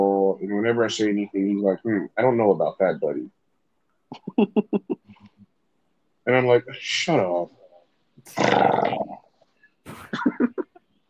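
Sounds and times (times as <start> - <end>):
speech: 0.0 - 3.4, 4.1 - 5.1, 6.3 - 7.6, 8.2 - 9.2
predator rasping growl-like roar: 8.3 - 9.2.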